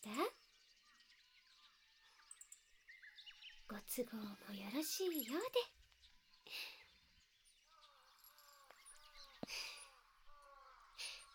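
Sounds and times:
speech: 0.0s - 0.4s, 3.7s - 5.8s
crows cawing in the evening: 7.7s - 11.3s.

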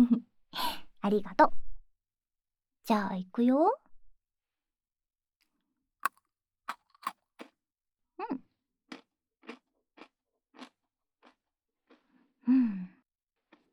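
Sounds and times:
speech: 1.0s - 1.6s, 2.9s - 3.8s
person biting through crunchy Pocky biscuit sticks: 6.0s - 7.5s, 8.9s - 12.1s, 13.4s - 13.7s.

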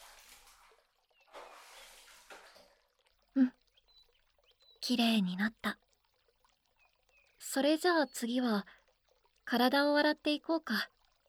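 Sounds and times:
water splash: 0.0s - 3.0s
running water rinsing shampoo out of hair: 0.0s - 10.2s
speech: 4.9s - 5.8s, 7.6s - 8.8s, 9.5s - 10.9s.

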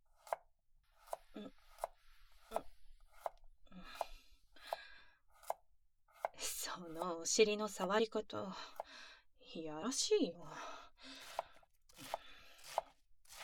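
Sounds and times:
kitchen knife chopping food on a cutting board: 0.2s - 0.4s, 2.5s - 6.3s, 11.2s - 13.4s
speech: 7.2s - 8.8s, 9.5s - 10.7s.

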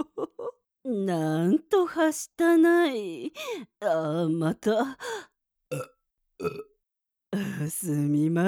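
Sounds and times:
speech: 0.9s - 6.7s, 7.3s - 8.4s
person burping heavily: 5.7s - 6.8s.

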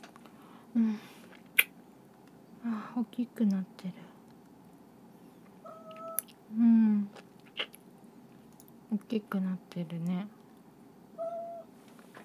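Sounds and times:
speech: 0.8s - 1.1s, 2.7s - 4.1s, 9.0s - 10.4s
cat meowing low: 5.6s - 6.2s, 11.2s - 11.7s.

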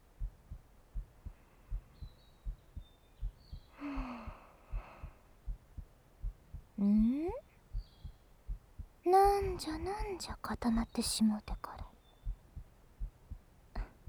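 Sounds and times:
heartbeat: 0.0s - 14.0s
soft breathy gasp or rustle: 3.8s - 5.2s
speech: 9.6s - 11.6s.

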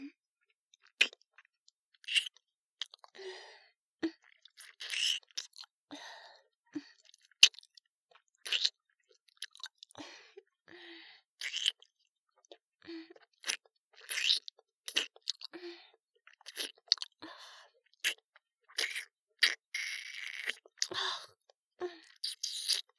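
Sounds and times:
wet mouth sucking and licking: 0.9s - 3.1s, 4.2s - 5.7s, 8.4s - 8.8s, 11.4s - 11.9s, 13.2s - 15.5s, 16.2s - 17.2s, 18.0s - 21.0s, 22.0s - 22.9s.

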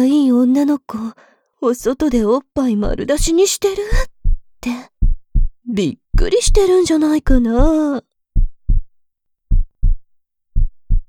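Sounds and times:
speech: 0.0s - 4.9s, 5.7s - 8.1s
loud deep heartbeat thumping in lub-dub pairs: 2.8s - 7.8s, 8.4s - 11.0s.

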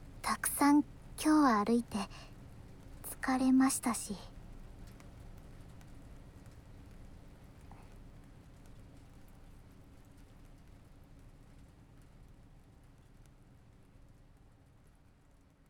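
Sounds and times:
steady rain falling: 0.1s - 9.5s
speech: 0.6s - 2.3s, 3.2s - 4.3s.

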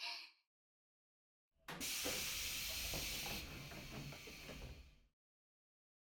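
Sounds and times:
train door opening with a loud pneumatic hiss: 1.7s - 5.1s.

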